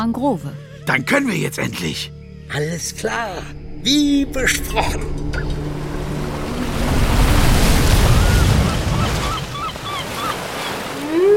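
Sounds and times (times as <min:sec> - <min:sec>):
speech: 0:00.0 - 0:05.6
heavy waves surging and sloshing: 0:05.4 - 0:11.3.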